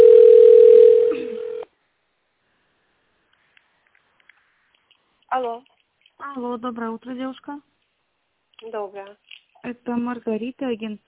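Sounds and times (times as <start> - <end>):
single-pitched telephone tone through an office phone line: 0.0 - 1.7
speech: 6.6 - 7.8, 8.6 - 11.0.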